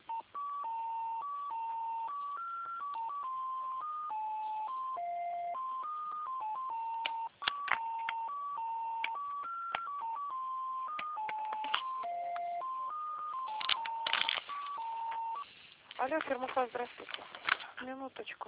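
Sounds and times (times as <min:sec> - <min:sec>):
electronic telephone beeps during call transfer: 0:00.0 - 0:15.5
speech: 0:16.0 - 0:18.4.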